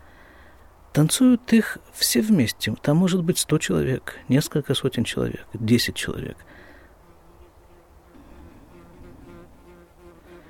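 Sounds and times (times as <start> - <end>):
speech: 1.0 - 6.7
bee buzzing and hovering: 7.0 - 10.4.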